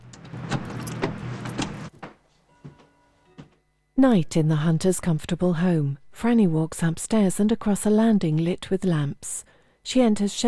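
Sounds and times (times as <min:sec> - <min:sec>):
car door shutting: 0:00.0 - 0:01.9
rustling and shuffling of woman getting into her car: 0:00.0 - 0:03.6
speech: 0:04.0 - 0:10.4.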